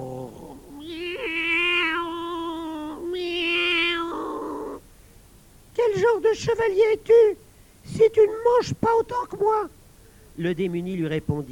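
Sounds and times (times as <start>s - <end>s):
cat yowling and growling: 0.0s - 4.8s
speech: 6.2s - 9.8s, 10.4s - 11.5s.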